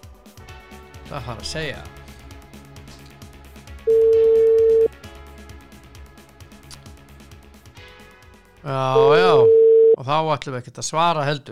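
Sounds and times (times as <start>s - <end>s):
speech: 1.1s - 2.0s, 8.6s - 11.4s
telephone busy signal: 3.9s - 4.9s, 9.0s - 10.0s.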